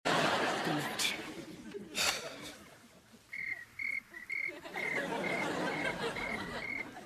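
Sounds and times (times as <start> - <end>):
laughter: 0.1 - 3.3, 4.1 - 7.0
hissy nighttime background: 0.1 - 7.0
crickets chirping at night in a trailer park: 3.3 - 7.0.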